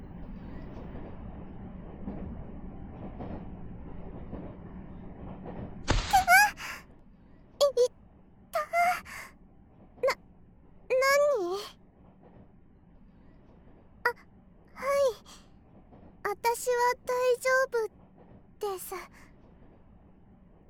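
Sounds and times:
commuter train rumble heard from inside a carriage: 0:00.0 - 0:20.6
sharp breathy gasps: 0:09.0 - 0:09.3.

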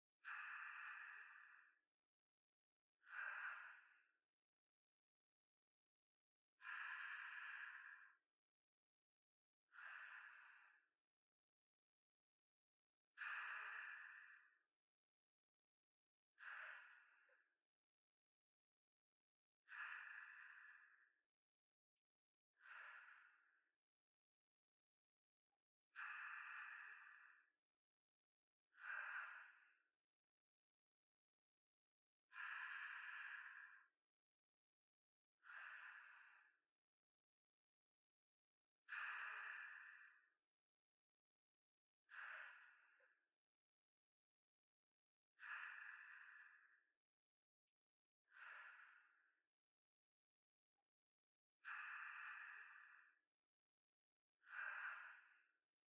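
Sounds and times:
sleep breathing ASMR: 0:00.2 - 0:01.8, 0:03.1 - 0:04.2, 0:06.6 - 0:08.2, 0:09.8 - 0:10.9, 0:13.2 - 0:14.4, 0:16.4 - 0:17.4, 0:19.7 - 0:21.0, 0:22.6 - 0:23.6, 0:26.0 - 0:27.5, 0:28.8 - 0:29.9, 0:32.3 - 0:34.0, 0:35.4 - 0:36.6, 0:38.9 - 0:40.3, 0:42.1 - 0:43.2, 0:45.4 - 0:46.9, 0:48.3 - 0:49.2, 0:51.6 - 0:53.2, 0:54.5 - 0:55.6.

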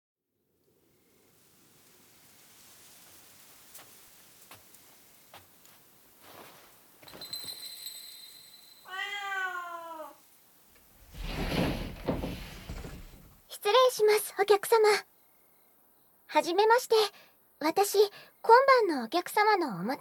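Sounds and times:
cat of an inn meowing: 0:08.9 - 0:10.3
speech: 0:13.6 - 0:15.1, 0:16.3 - 0:19.9.

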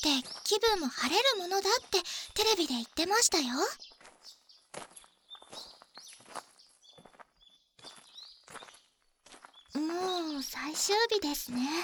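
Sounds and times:
speech: 0:00.0 - 0:03.9, 0:09.7 - 0:11.8
small birds chirping and tweeting outdoors in the morning: 0:00.0 - 0:11.8
outdoor footsteps crunching: 0:03.9 - 0:10.2.

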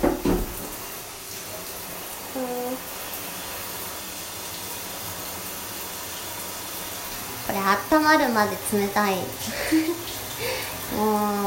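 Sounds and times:
shower water running: 0:00.0 - 0:11.4
person humming: 0:02.3 - 0:02.9
speech: 0:07.5 - 0:11.4.

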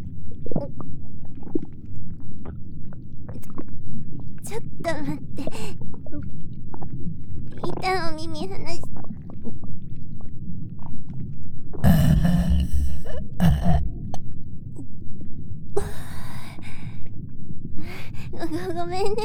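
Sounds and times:
soft steady rumbling background: 0:00.0 - 0:19.2
speech: 0:04.5 - 0:05.8, 0:08.2 - 0:08.9
short low throaty burps: 0:11.8 - 0:14.2.

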